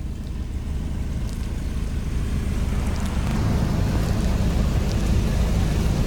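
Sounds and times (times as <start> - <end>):
low engine rumble of vehicles: 0.0 - 6.0
churning floodwater with waves sloshing: 1.8 - 6.0.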